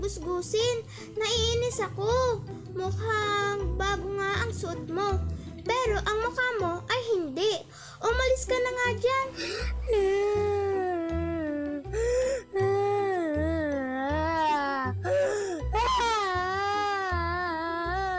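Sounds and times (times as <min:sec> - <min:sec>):
speech: 0:00.0 - 0:10.6
child crying and whimpering: 0:09.4 - 0:18.1.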